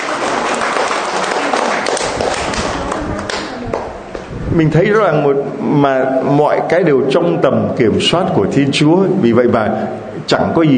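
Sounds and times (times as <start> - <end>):
audience applause for a child's answer: 0.0 - 3.9
speech: 4.5 - 10.7.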